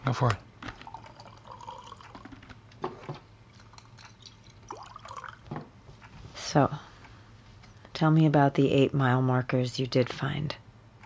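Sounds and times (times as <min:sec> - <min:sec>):
low steady hum: 0:00.0 - 0:11.0
speech: 0:00.1 - 0:00.5, 0:06.5 - 0:06.9, 0:08.0 - 0:10.6
whiskey pouring into a glass in an office: 0:00.8 - 0:02.3, 0:03.5 - 0:05.5.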